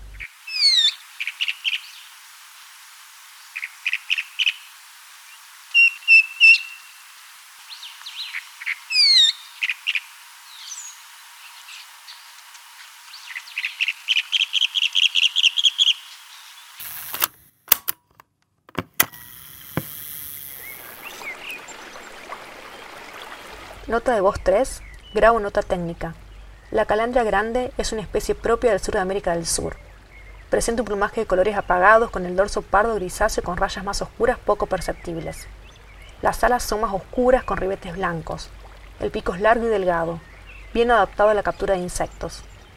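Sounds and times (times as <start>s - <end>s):
group of chalk-browed mockingbirds calling: 0.0s - 2.2s, 3.4s - 16.8s, 20.4s - 27.1s, 39.2s - 42.7s
speech: 23.9s - 29.8s, 30.5s - 35.6s, 36.2s - 42.5s.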